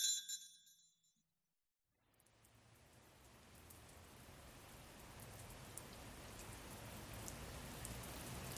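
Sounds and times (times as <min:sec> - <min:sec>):
steady rain pouring: 0:02.1 - 0:08.5.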